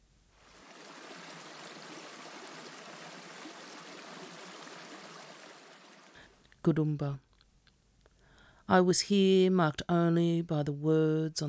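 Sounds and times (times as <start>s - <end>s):
river water rushing with fine bubbling: 0.5s - 6.2s
speech: 6.6s - 7.3s, 8.7s - 11.4s.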